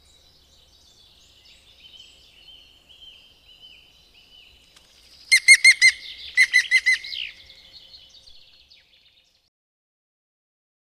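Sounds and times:
European green woodpecker giving ringing laugh notes: 5.3s - 7.3s.

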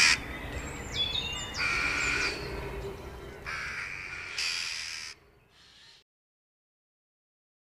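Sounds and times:
Eurasian jackdaw rough scratchy calls: 0.0s - 0.3s, 0.9s - 2.5s, 3.4s - 6.0s.

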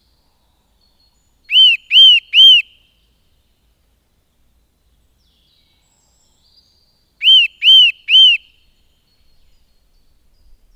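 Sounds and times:
Eurasian nuthatch whistling: 1.5s - 2.7s, 7.2s - 8.5s.

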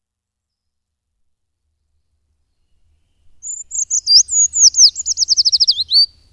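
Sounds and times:
Eurasian treecreeper singing a high thin descending song: 3.4s - 6.1s.

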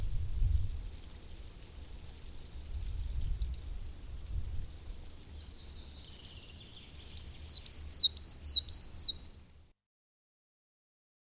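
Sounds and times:
faint wind-like rumble: 0.0s - 7.5s
coal tit song: 5.1s - 9.4s.

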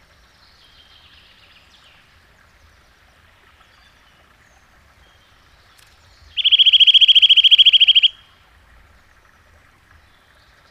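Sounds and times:
Eurasian nuthatch giving a fast even trill: 6.4s - 8.2s.

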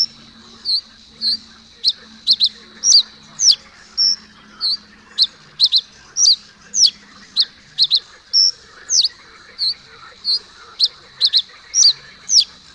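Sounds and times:
common reed bunting chirping: 0.0s - 12.7s
faint low hum: 0.0s - 12.7s.

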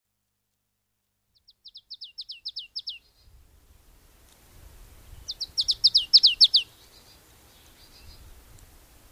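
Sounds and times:
marsh tit giving bright downslurred notes: 1.4s - 3.3s, 5.2s - 8.3s.

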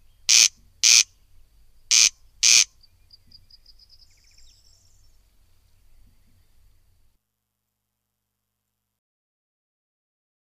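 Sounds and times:
corncrake rasping call: 0.2s - 1.1s, 1.9s - 2.8s.

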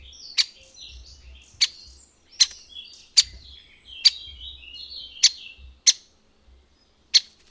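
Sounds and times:
great spotted woodpecker giving sharp loud single kik notes: 0.0s - 6.2s, 6.8s - 7.4s
soft twittering of other small birds: 0.0s - 7.4s.

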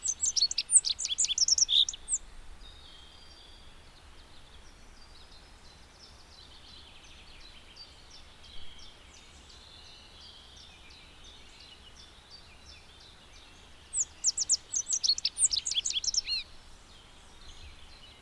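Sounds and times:
rock bunting song burst: 0.0s - 18.2s
steady background hiss: 0.0s - 18.2s.

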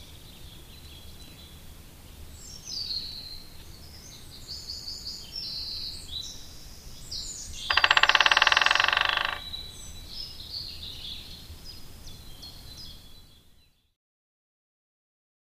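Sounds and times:
birds singing high thin phrases: 4.0s - 13.5s
White-backed woodpecker drumming: 7.6s - 9.8s.

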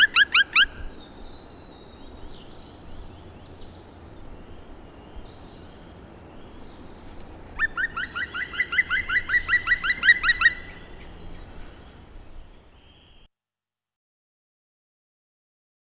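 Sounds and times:
black woodpecker calling: 0.0s - 1.0s, 7.6s - 13.3s.

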